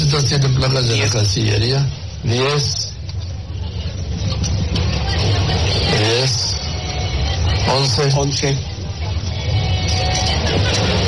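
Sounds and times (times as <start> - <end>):
speech: 0.2 - 3.0, 7.7 - 8.7
motorcade of vans driving past: 3.4 - 11.0.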